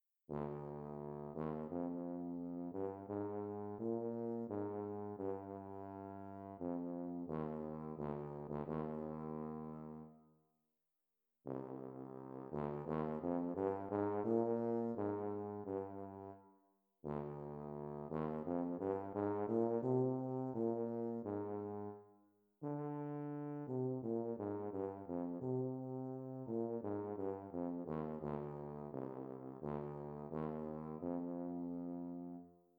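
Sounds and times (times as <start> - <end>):
slow tuba: 0.3 - 10.5, 11.4 - 32.7.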